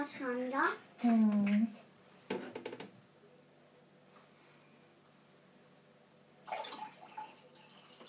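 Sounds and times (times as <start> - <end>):
speech: 0.2 - 1.4
water pouring into a cup: 6.4 - 8.0.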